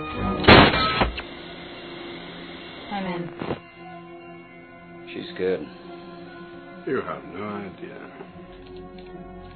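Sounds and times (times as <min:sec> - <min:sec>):
thick heavy door blasted open by charges: 0:00.2 - 0:02.2
smaller thud: 0:00.4 - 0:01.3
speech: 0:05.2 - 0:05.8, 0:06.8 - 0:09.4.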